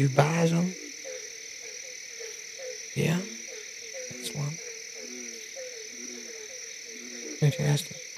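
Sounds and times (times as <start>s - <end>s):
speech: 0.0s - 0.8s, 3.0s - 3.3s, 7.5s - 8.0s
frogs in big restaurant tanks croaking in a chorus: 0.0s - 8.1s.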